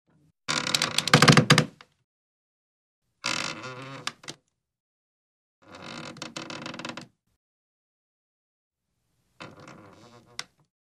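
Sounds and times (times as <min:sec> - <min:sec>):
wooden door creaking: 0:00.5 - 0:01.8, 0:03.2 - 0:04.4, 0:05.6 - 0:07.1, 0:09.4 - 0:10.6.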